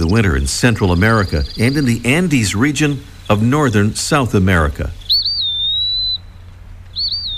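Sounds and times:
Eastern Wood Pewee singing whistled phrases: 0.0s - 3.4s, 4.9s - 7.3s
low steady hum: 0.0s - 7.3s
speech: 0.1s - 5.0s.

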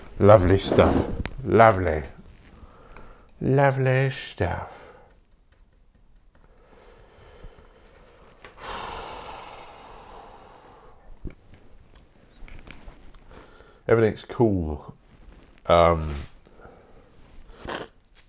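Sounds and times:
speech: 0.2s - 2.2s, 3.4s - 4.8s, 13.9s - 15.0s, 15.7s - 16.3s
person blowing nose: 0.4s - 1.5s, 17.5s - 18.0s
soft sniffs: 0.4s - 1.8s, 17.5s - 18.0s.

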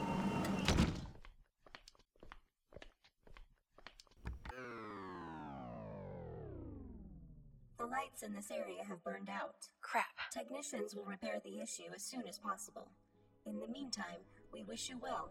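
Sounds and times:
mechanical door sliding shut: 0.0s - 1.2s
electric hum winding down in pitch: 4.5s - 7.8s
speech: 8.0s - 15.2s.

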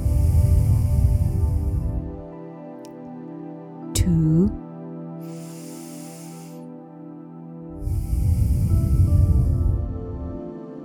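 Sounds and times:
slow breath drawn and released through the nose during a guided meditation: 0.0s - 2.6s, 5.1s - 10.6s.

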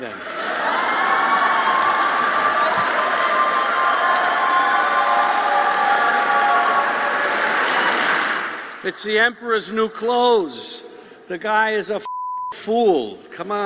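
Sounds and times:
large crowd cheering and clapping: 0.0s - 8.9s
speech: 8.9s - 13.6s.

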